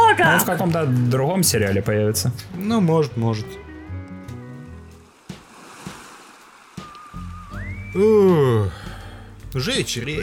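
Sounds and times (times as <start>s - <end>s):
speech: 0.2s - 3.6s, 7.9s - 10.2s
sea waves lapping at sunset: 4.6s - 7.8s
rising whistle-like tone: 6.8s - 8.4s.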